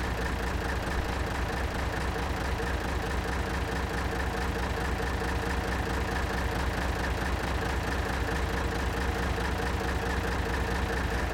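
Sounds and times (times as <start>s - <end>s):
Tiger tank diesel engine interior: 0.0s - 11.3s.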